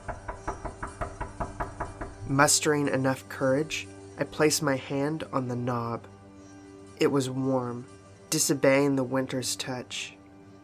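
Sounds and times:
knocks on a door: 0.0 - 2.3
speech: 2.3 - 6.1, 7.0 - 10.2.

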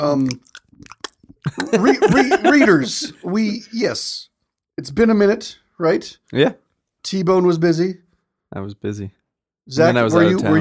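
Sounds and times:
speech: 0.0 - 0.5, 1.4 - 10.6
chewing of beef jerky: 0.0 - 1.7
wet mouth clicks and smacks: 0.0 - 1.8
laughter: 1.5 - 3.6.

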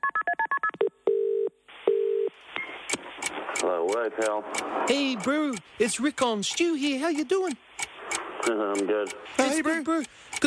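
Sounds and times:
low telephone ringing tones: 0.0 - 2.3
telephone line hiss with faint clicks: 2.5 - 10.4
speech: 3.6 - 7.7, 8.4 - 10.4.

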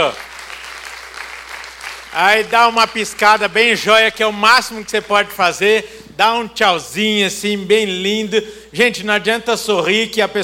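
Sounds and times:
speech: 0.0 - 0.3, 2.1 - 10.4
audience applauding: 0.0 - 3.5.

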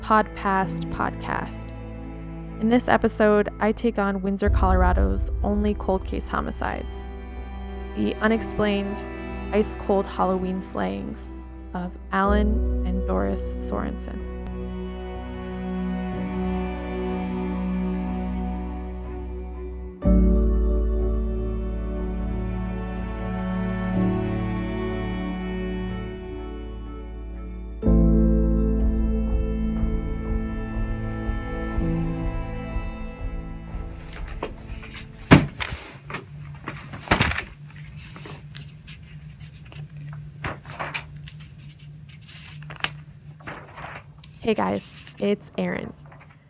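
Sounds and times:
sustained music: 0.0 - 46.4
speech: 0.1 - 1.8, 2.6 - 7.2, 8.0 - 14.3, 44.5 - 46.0
low hum: 4.2 - 45.2, 45.9 - 46.3
pages of old newspaper rustling and flapping: 33.9 - 46.4.

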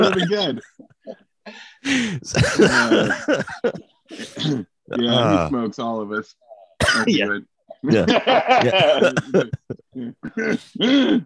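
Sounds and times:
several people coughing rough coughs while laughing: 0.0 - 1.2, 2.0 - 5.5, 6.8 - 11.2
several people laughing: 0.0 - 1.2, 1.9 - 4.0, 7.8 - 10.8
speech: 0.0 - 11.2.

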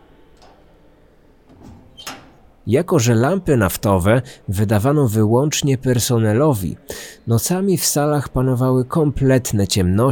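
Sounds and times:
door closing with a soft dull thud: 1.5 - 2.5
speech: 2.6 - 10.1.

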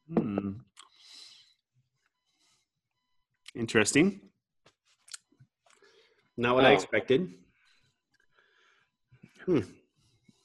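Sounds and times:
short hummed vocal sound: 0.1 - 0.6
speech: 3.6 - 4.3, 6.4 - 7.4, 9.5 - 9.8.

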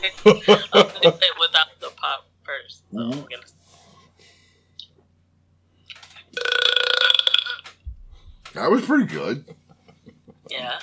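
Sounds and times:
laughter: 0.0 - 1.3, 9.1 - 10.8
speech: 0.0 - 1.3
loud drawn-out burp: 6.4 - 7.7.

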